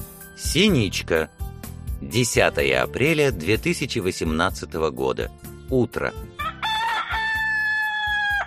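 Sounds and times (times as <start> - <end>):
speech: 0.4 - 1.4, 2.0 - 6.4
rooster crowing in the morning: 6.4 - 8.4.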